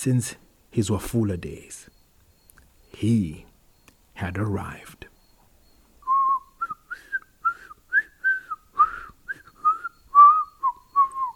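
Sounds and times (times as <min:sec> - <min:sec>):
speech: 0:00.0 - 0:02.0, 0:03.0 - 0:03.5, 0:04.2 - 0:05.1
man whistling a lively tune while walking: 0:06.0 - 0:11.3.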